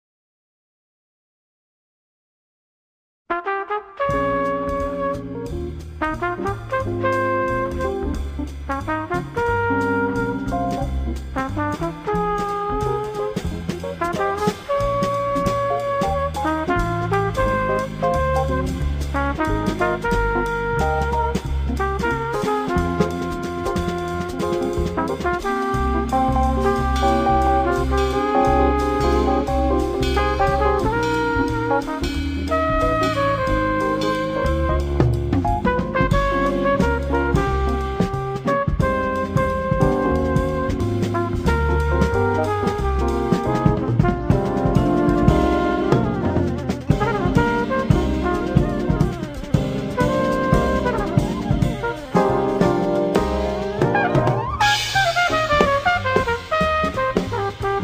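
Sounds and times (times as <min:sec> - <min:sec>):
trumpet: 0:03.3 - 0:57.8
saxophone: 0:03.8 - 0:05.6, 0:14.4 - 0:57.8.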